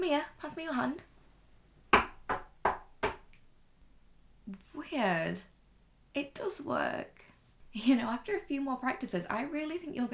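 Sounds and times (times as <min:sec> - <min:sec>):
speech: 0:00.0 - 0:01.1, 0:04.5 - 0:05.5, 0:06.2 - 0:10.1
sharp knocks by hand on a hard surface: 0:01.9 - 0:03.3.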